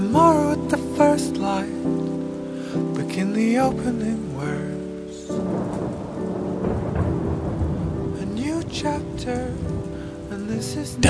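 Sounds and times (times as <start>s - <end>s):
deep rolling rumble of thunder: 0.0s - 11.0s
steady rain pouring: 0.0s - 11.0s
speech: 3.2s - 6.0s, 8.7s - 9.7s, 10.4s - 11.0s.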